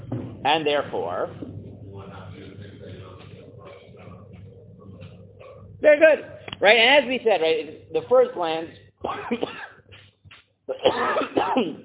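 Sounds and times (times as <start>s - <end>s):
speech: 0.4s - 1.5s, 5.8s - 9.5s, 10.7s - 11.8s
person coughing harshly: 9.0s - 9.8s, 10.7s - 11.8s.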